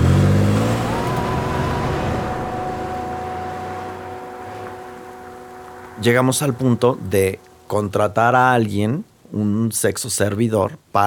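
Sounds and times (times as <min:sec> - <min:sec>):
household car driving away at night: 0:00.0 - 0:05.9
car engine revving: 0:00.0 - 0:06.6
steady whine of departing car: 0:00.3 - 0:08.7
speech: 0:06.0 - 0:11.0.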